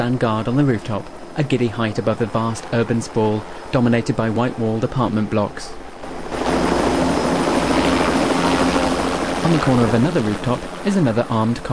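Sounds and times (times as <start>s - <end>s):
speech: 0.0s - 5.8s, 9.5s - 11.7s
helicopter circling a high-rise building, rotor and engine drone: 0.0s - 11.7s.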